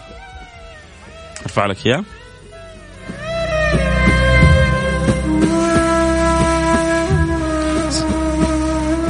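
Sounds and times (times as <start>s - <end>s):
breathy ney flute playing long sliding notes: 0.0s - 9.0s
speech: 1.5s - 2.2s
frame drum hits: 3.0s - 7.4s.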